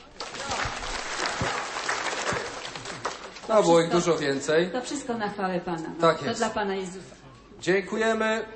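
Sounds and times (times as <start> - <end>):
crowd applauding at a church mass: 0.0 - 4.3
speech: 3.5 - 8.5.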